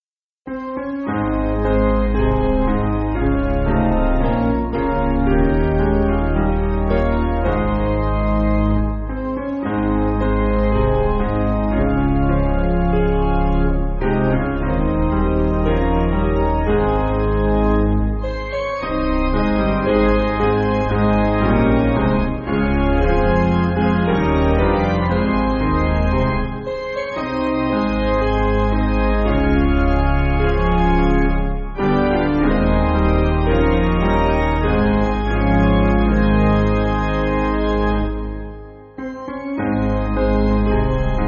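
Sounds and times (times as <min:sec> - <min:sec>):
hymn played on piano: 0:00.5 - 0:41.2.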